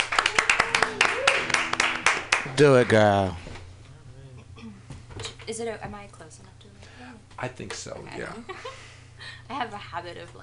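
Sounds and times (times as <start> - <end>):
small audience applauding a performer: 0.0 - 3.4
speech: 2.6 - 3.4, 5.5 - 8.9, 9.5 - 10.4.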